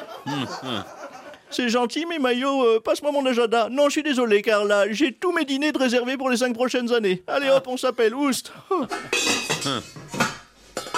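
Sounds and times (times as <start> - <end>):
laughter: 0.0 - 1.5
speech: 0.2 - 10.0
pots and pans rattling and clanking: 8.9 - 10.9.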